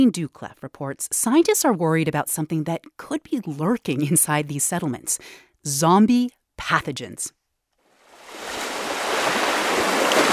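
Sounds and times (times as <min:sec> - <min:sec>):
speech: 0:00.0 - 0:07.4
ocean surf roaring on an Arctic ocean bluff: 0:08.1 - 0:10.3.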